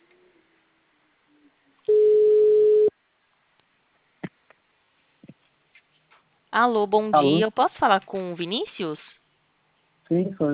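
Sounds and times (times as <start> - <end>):
telephone ringback tone as an outgoing call is placed: 1.9 - 2.9
speech: 6.5 - 9.1, 10.1 - 10.5.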